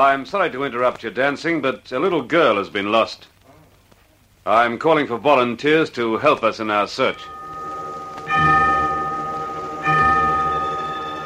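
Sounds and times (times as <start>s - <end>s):
speech: 0.0s - 3.3s, 4.4s - 7.4s
resonant church bell strikes: 7.0s - 11.2s.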